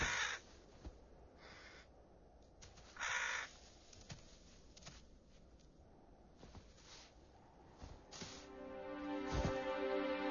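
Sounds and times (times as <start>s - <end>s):
crows cawing: 0.0s - 0.5s, 2.9s - 3.6s
outdoor ambience: 0.0s - 10.2s.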